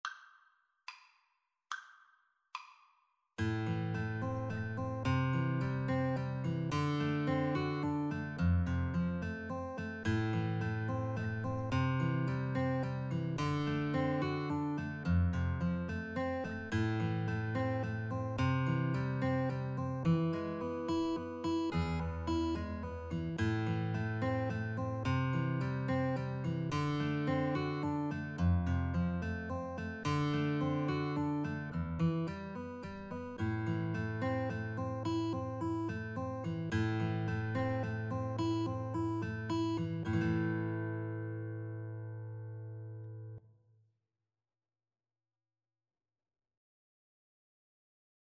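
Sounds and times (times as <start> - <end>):
guitar duet: 3.4 - 9.2, 10.0 - 32.6, 33.4 - 43.3.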